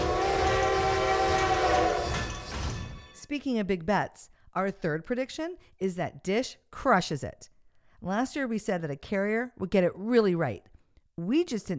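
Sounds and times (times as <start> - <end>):
train horn blaring: 0.0 - 3.2
speech: 3.3 - 11.7.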